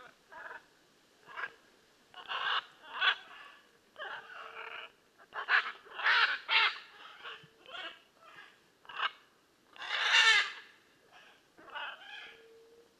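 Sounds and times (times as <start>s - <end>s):
blue-and-yellow macaw Ara ararauna squawking and screeching: 2.2s - 9.2s, 9.8s - 10.6s, 11.2s - 12.4s.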